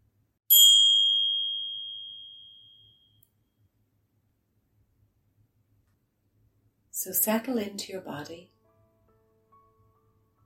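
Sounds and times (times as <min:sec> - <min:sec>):
meditation bell struck to start a guided meditation: 0:00.5 - 0:03.2
speech: 0:07.0 - 0:08.6.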